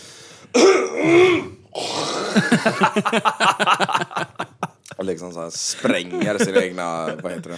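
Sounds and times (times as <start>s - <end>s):
person imitating loud throat clearing and hawking: 0.5s - 2.6s
laughter: 2.3s - 5.0s, 5.7s - 7.5s
speech: 2.4s - 4.2s, 5.0s - 7.5s.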